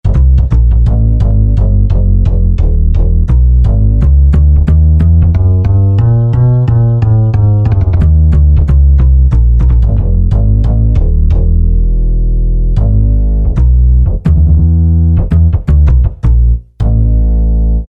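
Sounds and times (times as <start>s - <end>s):
acoustic bass on a Generalmusic Equinox: 0.0s - 17.8s.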